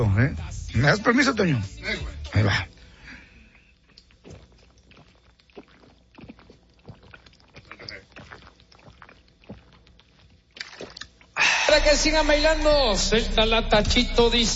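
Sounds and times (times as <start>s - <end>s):
speech: 0.0s - 2.8s, 11.7s - 14.5s
person gulping water from a bottle: 3.7s - 11.5s.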